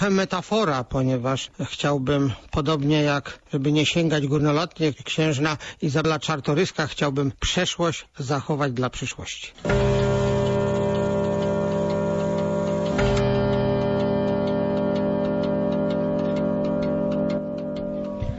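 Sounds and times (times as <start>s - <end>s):
speech: 0.0s - 10.1s
clock ticking: 9.6s - 18.3s.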